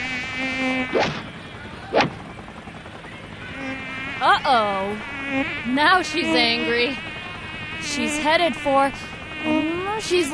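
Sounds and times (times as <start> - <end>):
mosquito buzzing whine: 0.0 - 1.1, 3.4 - 10.3
sharp smacks: 1.0 - 1.2, 2.0 - 2.2
speech: 4.4 - 7.1, 7.8 - 10.3.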